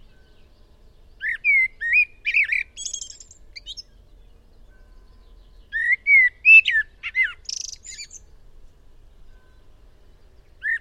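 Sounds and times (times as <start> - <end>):
Eurasian blackbird Turdus merula fluting whistled song: 1.2 - 4.0, 4.9 - 8.2, 10.6 - 10.7.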